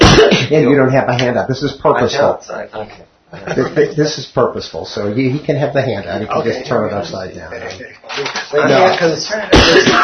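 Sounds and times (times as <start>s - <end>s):
person coughing with a rough throat-clearing rasp: 0.0s - 0.5s, 9.5s - 10.0s
speech: 0.5s - 10.0s.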